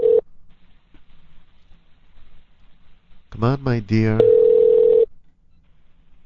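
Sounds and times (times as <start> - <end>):
telephone ringback tone: 0.0 - 0.2, 4.2 - 5.1
speech: 3.4 - 4.4.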